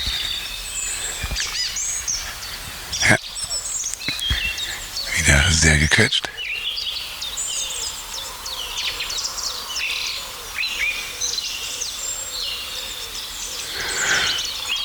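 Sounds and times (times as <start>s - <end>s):
dense steady outdoor chorus of high chirps and twitters: 0.0s - 14.8s
pigeons calling: 0.0s - 14.8s
speech: 5.7s - 6.4s.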